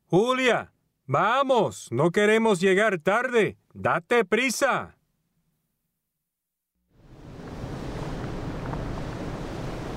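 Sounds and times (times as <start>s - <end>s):
speech: 0.1s - 5.0s
faint windy hiss: 6.9s - 9.9s
waves washing onto a tropical beach: 7.0s - 9.9s.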